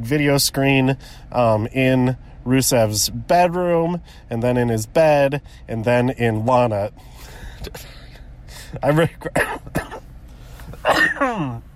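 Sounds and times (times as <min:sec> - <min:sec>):
speech: 0:00.0 - 0:10.0, 0:10.8 - 0:11.7
person coughing from chest congestion with mucus in the lungs: 0:09.2 - 0:10.1, 0:10.7 - 0:11.6
throat clearing: 0:10.8 - 0:11.6.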